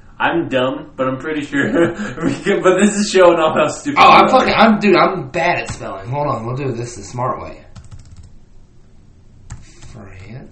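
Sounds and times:
low hiss: 0:00.0 - 0:10.5
speech: 0:00.2 - 0:07.7
laughter: 0:01.5 - 0:03.4
computer keyboard typing: 0:07.7 - 0:08.4, 0:09.5 - 0:10.4.

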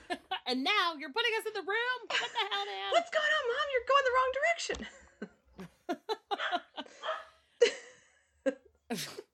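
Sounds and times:
speech: 0:00.1 - 0:05.0, 0:08.9 - 0:09.2
female dog barking in sharp yaps: 0:07.0 - 0:07.4.

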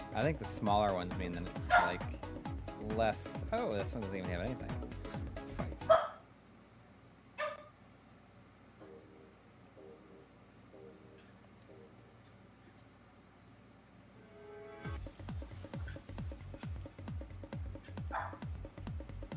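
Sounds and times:
low hum: 0:00.1 - 0:19.3
speech: 0:00.2 - 0:05.0
dog barking excitedly: 0:01.7 - 0:02.1, 0:05.9 - 0:06.2, 0:07.4 - 0:07.7, 0:18.0 - 0:18.4.

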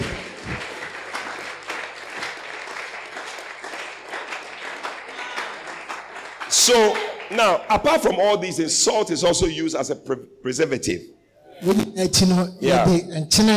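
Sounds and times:
small group clapping applause: 0:00.0 - 0:08.6
speech: 0:06.6 - 0:13.5.

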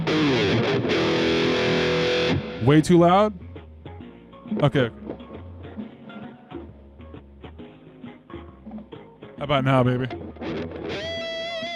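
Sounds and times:
electric guitar played through a distortion effect: 0:00.0 - 0:02.7, 0:10.0 - 0:11.7
speech: 0:02.6 - 0:03.5, 0:04.5 - 0:05.0, 0:09.4 - 0:10.2.

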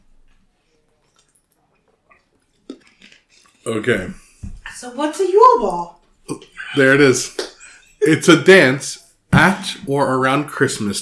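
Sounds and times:
person sipping water: 0:00.7 - 0:03.7
speech: 0:03.6 - 0:04.2, 0:04.8 - 0:07.4, 0:08.0 - 0:11.0
person swallowing water: 0:06.3 - 0:06.8.

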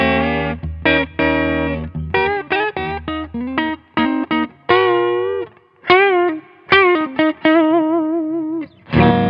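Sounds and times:
overdriven electric guitar riff played through P19 pickups: 0:00.0 - 0:09.2.

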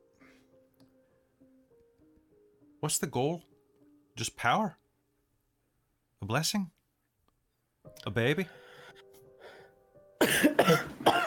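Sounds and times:
speech: 0:02.8 - 0:03.5, 0:04.2 - 0:04.8, 0:06.2 - 0:06.8, 0:08.0 - 0:08.6
person coughing harshly with a throat-clearing rasp: 0:10.2 - 0:11.2.

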